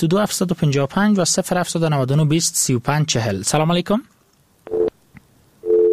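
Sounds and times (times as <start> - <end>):
speech: 0.0 - 4.8
phone line busy tone after a dropped call: 4.7 - 4.9, 5.6 - 5.9.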